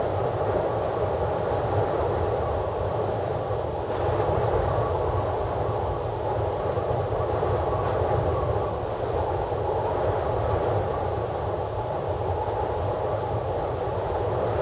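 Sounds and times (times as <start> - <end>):
low wind: 0.0 - 14.6.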